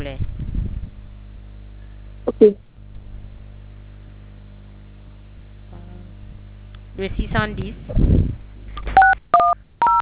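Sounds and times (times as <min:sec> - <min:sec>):
faint low hum: 0:00.0 - 0:10.0
speech: 0:02.4 - 0:02.7, 0:07.0 - 0:08.4
telephone keypad tones from pressing keys: 0:09.0 - 0:10.0.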